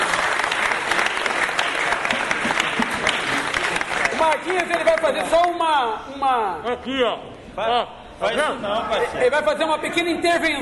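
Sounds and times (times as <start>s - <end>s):
audience applause: 0.0s - 5.6s
speech: 4.5s - 10.6s.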